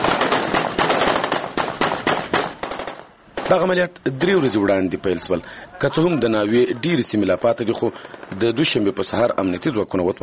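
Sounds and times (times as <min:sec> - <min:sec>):
soldiers firing celebratory gunshots into the air in a district bazaar: 0:00.0 - 0:03.6
speech: 0:03.5 - 0:10.2.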